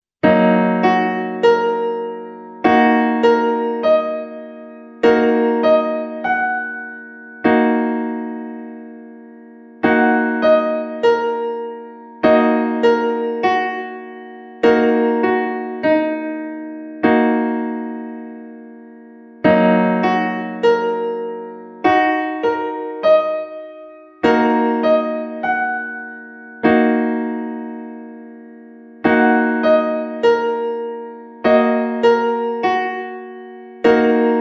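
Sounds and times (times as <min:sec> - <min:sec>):
D sharp minor piano keyboard chord: 0:00.2 - 0:34.3.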